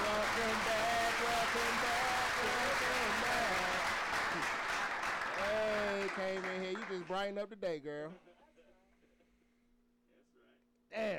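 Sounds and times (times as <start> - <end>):
group applauding: 0.0 - 7.5
speech: 1.5 - 3.2, 5.4 - 8.4, 10.9 - 11.1.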